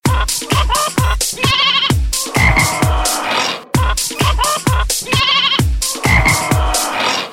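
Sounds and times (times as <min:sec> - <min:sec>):
song about animals: 0:00.0 - 0:07.3.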